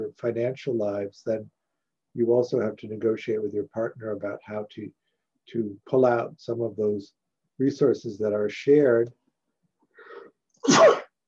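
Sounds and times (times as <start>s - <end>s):
speech: 0.1s - 1.6s, 2.2s - 9.2s, 10.6s - 11.0s
person sneezing: 10.6s - 11.1s.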